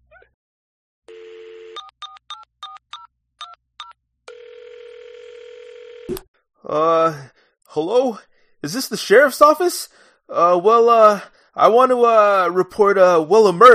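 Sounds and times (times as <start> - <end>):
telephone dial tone: 1.1 - 6.1
speech: 6.1 - 13.7.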